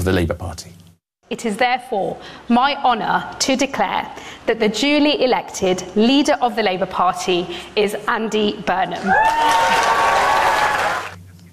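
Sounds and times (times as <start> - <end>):
speech: 0.0 - 10.2
loud applause from a packed room of party members: 9.1 - 11.2.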